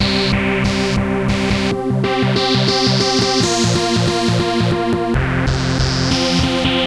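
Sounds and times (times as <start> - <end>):
bass loop: 0.0 - 6.8
techno synth: 0.0 - 6.8.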